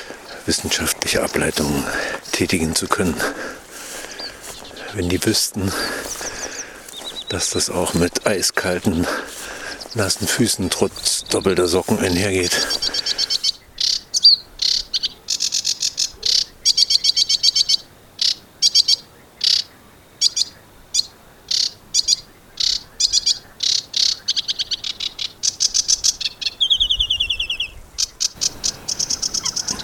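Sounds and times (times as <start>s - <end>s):
sedge warbler singing: 0.0s - 29.8s
speech: 0.5s - 3.6s, 5.0s - 6.3s, 7.3s - 9.4s, 10.0s - 13.0s.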